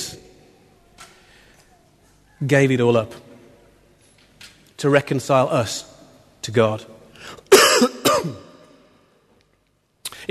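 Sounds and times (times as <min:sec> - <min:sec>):
speech: 0:02.4 - 0:03.2, 0:04.8 - 0:08.4
harsh coughs into a microphone: 0:07.5 - 0:08.6.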